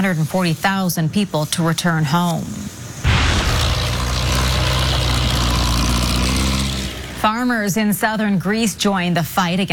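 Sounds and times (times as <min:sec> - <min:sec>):
speech: 0:00.0 - 0:02.8, 0:07.2 - 0:09.7
firefighting aircraft dropping water over a burned landscape in France: 0:03.1 - 0:07.3.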